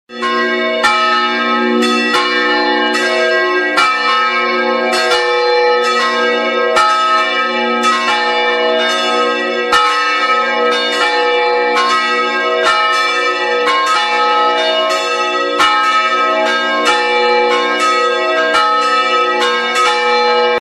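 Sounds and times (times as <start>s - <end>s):
church bells: 0.1s - 20.6s.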